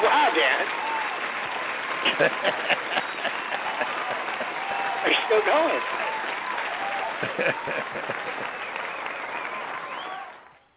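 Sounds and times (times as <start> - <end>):
dense crowd applause: 0.0 - 10.7
faint cheers: 0.0 - 10.7
laughter: 2.0 - 5.8, 6.9 - 8.7
speech: 2.1 - 3.0, 5.3 - 6.0, 7.2 - 8.7.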